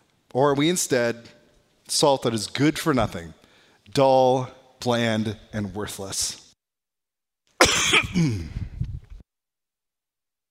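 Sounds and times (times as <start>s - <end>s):
speech: 0.4s - 6.4s, 7.9s - 8.6s
loud cough into a microphone during a church sermon: 7.6s - 8.7s
rough rasping throat-clearing: 7.6s - 8.7s.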